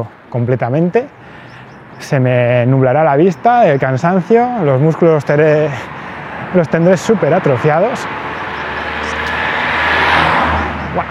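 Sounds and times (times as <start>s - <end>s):
speech: 0.0s - 1.4s, 2.0s - 5.9s, 6.5s - 8.3s
car passing close by: 4.6s - 11.1s.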